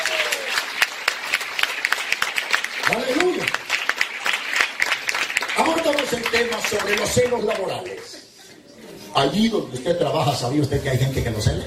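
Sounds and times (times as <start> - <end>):
applause from a church congregation: 0.0 - 8.2
speech: 6.1 - 8.2, 9.2 - 11.6.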